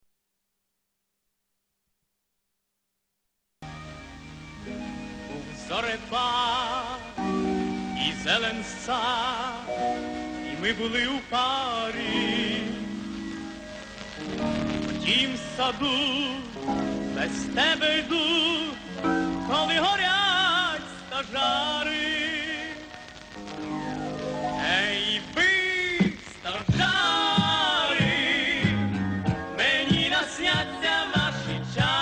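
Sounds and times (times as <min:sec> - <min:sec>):
person singing a Ukrainian serenade: 0:05.3 - 0:13.3, 0:14.6 - 0:23.2, 0:24.4 - 0:32.0.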